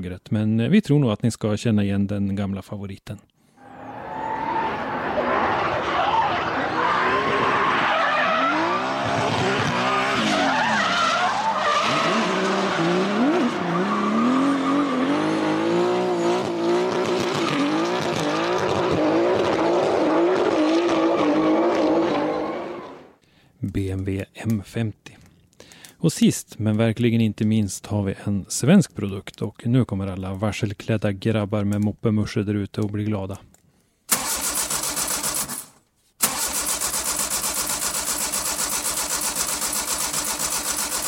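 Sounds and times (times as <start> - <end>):
speech: 0.0 - 3.3, 23.8 - 25.2, 26.0 - 33.5
car tires squealing and skidding: 3.6 - 23.1
engine of a car built in Munich revving hard: 4.5 - 23.1, 36.2 - 41.0.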